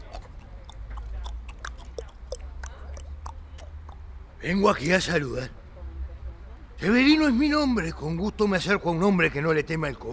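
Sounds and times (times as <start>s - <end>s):
man making tongue clicks imitating horse hoofbeats: 0.0s - 4.2s
speech: 4.4s - 5.6s, 6.8s - 10.1s.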